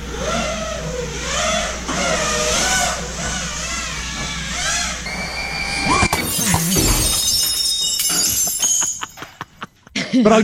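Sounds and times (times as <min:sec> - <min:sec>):
drone motor buzzing whine: 0:00.0 - 0:07.6
sliding glass door shattering from drone crash: 0:05.9 - 0:09.6
tinkling scattering glass shards: 0:06.1 - 0:09.6.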